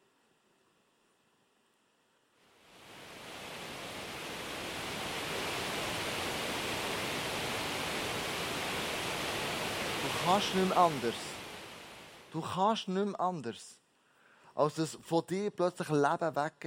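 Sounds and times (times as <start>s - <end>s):
roar of rushing water at a dam wall: 2.5s - 12.4s
speech: 10.3s - 11.3s, 12.4s - 13.8s, 14.6s - 16.6s.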